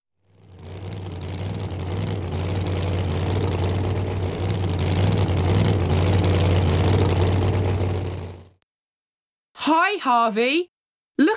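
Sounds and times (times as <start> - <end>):
flying car engine droning in the sky: 0.2 - 8.6
speech: 9.8 - 11.3.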